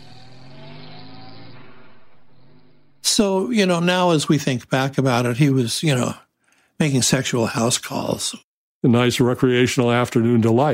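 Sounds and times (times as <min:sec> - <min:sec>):
car engine accelerating and pulling away: 0:00.0 - 0:03.0
speech: 0:03.2 - 0:06.2, 0:06.8 - 0:10.7.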